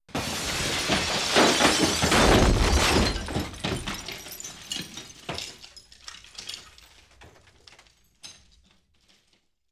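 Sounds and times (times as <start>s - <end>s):
explosion: 0.1s - 4.0s
glass debris from an explosion: 0.1s - 9.3s.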